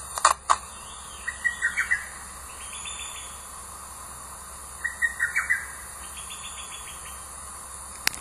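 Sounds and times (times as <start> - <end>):
lesser cuckoo calling in staccato phrases: 0.7 - 3.5, 4.8 - 7.4.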